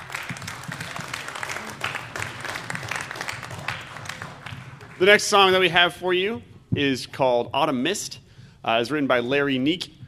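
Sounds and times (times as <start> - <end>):
audience applause: 0.0 - 5.1
speech: 5.0 - 10.0.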